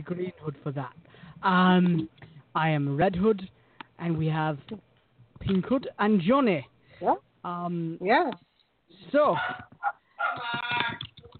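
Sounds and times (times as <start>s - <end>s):
speech: 0.0s - 9.7s
dog barking and howling: 9.4s - 10.8s.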